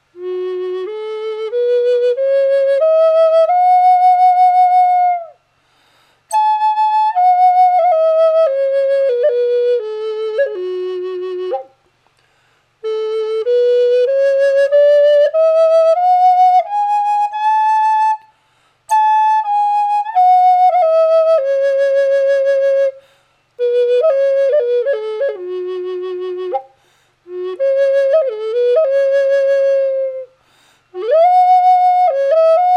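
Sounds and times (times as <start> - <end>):
dry flutes playing F sharp: 0.0 - 5.4, 6.3 - 11.8, 12.8 - 18.3, 18.9 - 32.7.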